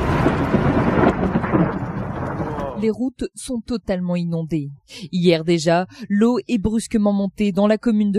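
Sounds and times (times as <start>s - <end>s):
thunder from a violent overnight storm over Montpellier in southern France: 0.0s - 4.0s
speech: 2.8s - 8.1s.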